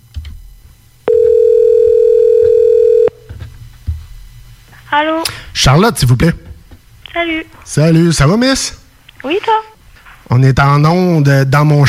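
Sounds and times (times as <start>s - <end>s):
telephone dial tone while placing a call: 1.1s - 3.1s
speech: 5.0s - 6.4s, 7.2s - 9.7s, 10.4s - 11.8s.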